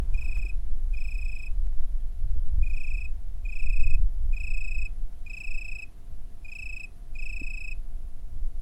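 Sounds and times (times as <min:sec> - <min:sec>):
cricket chirping in Italy: 0:00.0 - 0:01.6, 0:02.6 - 0:07.8.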